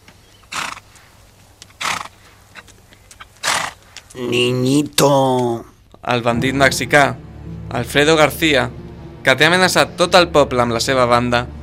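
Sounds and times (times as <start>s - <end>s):
horse hooves clopping: 0.0s - 4.5s
horse neighing and snorting: 0.5s - 0.8s, 1.8s - 2.6s, 3.4s - 4.5s
speech: 4.1s - 11.6s.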